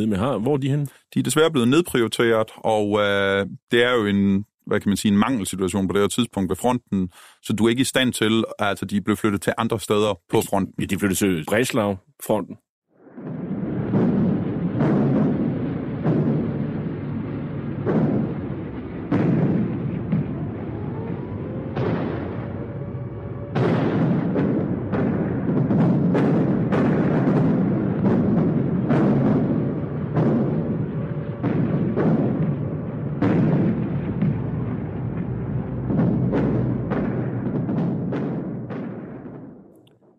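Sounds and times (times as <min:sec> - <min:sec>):
speech: 0:00.0 - 0:12.6
bombs exploding in an air raid by British Lancaster bombers: 0:13.0 - 0:40.1.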